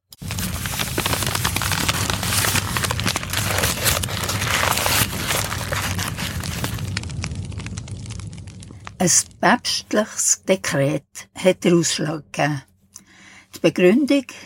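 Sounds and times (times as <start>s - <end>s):
large fire of stacked books roaring and crackling: 0.1s - 10.8s
speech: 9.0s - 12.7s, 13.6s - 14.4s.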